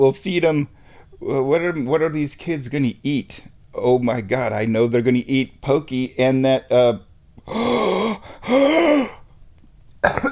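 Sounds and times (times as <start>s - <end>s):
speech: 0.0s - 7.7s, 8.5s - 9.1s
voiced gasps of shock: 7.4s - 9.3s.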